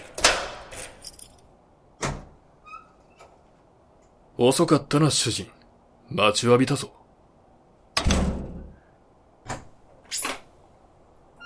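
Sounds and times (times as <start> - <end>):
door shutting with a loud thud: 2.0 - 2.4, 8.0 - 8.8
speech: 4.4 - 7.0.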